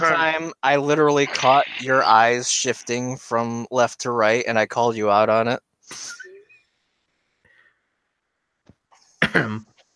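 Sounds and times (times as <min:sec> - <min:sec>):
speech: 0:00.1 - 0:06.2, 0:09.3 - 0:09.7
faint breaths: 0:07.1 - 0:08.0
single loud cough: 0:09.2 - 0:09.7.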